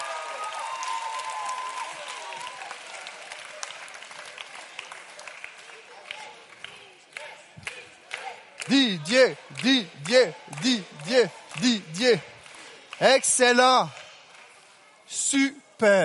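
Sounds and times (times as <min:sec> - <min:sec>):
people whooping: 0:00.0 - 0:03.0
audience applauding: 0:00.0 - 0:06.7, 0:08.6 - 0:14.5
speech: 0:08.7 - 0:12.3, 0:13.0 - 0:14.0, 0:15.3 - 0:16.0.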